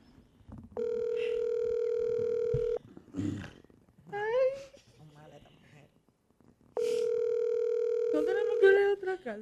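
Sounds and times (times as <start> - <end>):
ringback tone of an outgoing phone call: 0.8 - 2.8, 6.8 - 9.0.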